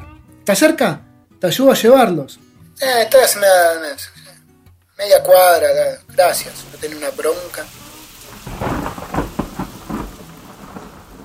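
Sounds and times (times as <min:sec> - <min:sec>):
speech: 0:00.5 - 0:04.2, 0:05.0 - 0:07.8
heavy rain: 0:06.2 - 0:11.2
thunder rumbling: 0:06.4 - 0:11.2.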